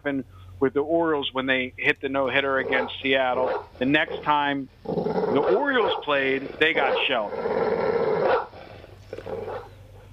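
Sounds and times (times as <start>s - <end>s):
speech: 0.0s - 8.0s
dog barking with a growling edge: 2.6s - 3.7s, 5.4s - 6.2s, 6.8s - 7.1s, 8.2s - 8.5s, 9.4s - 10.1s.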